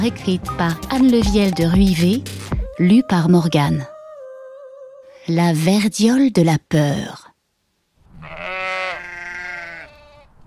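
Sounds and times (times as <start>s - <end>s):
speech: 0.0s - 3.9s, 5.3s - 7.2s
sheep bleating: 8.1s - 10.4s.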